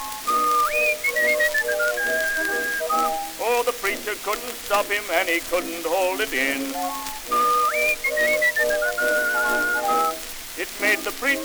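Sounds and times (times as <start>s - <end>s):
person whistling a short melodic tune: 0.0s - 3.4s, 7.3s - 10.2s
soft hissy background: 0.0s - 11.4s
speech: 4.1s - 7.4s, 8.0s - 11.4s.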